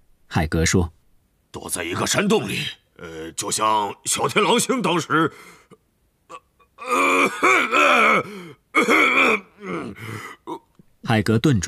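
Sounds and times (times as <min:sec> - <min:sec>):
speech: 0:00.4 - 0:11.6
gruff throat clearing imitated by a voice: 0:06.3 - 0:10.8.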